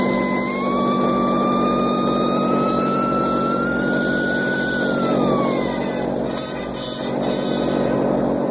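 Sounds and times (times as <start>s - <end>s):
car engine accelerating and driving off: 0.0s - 8.4s.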